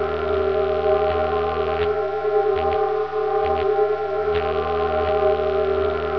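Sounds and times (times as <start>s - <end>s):
forcefield hum: 0.0s - 6.1s.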